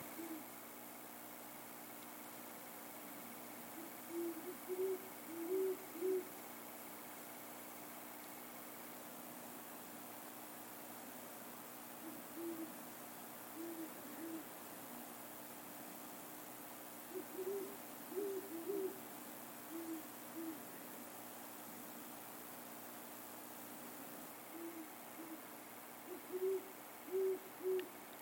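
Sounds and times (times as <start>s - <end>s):
two owls hooting back and forth: 0.0s - 0.5s, 3.8s - 6.4s, 12.0s - 12.8s, 13.6s - 14.5s, 17.1s - 19.0s, 19.7s - 20.6s, 24.5s - 27.9s
steady quiet hiss: 0.0s - 28.2s.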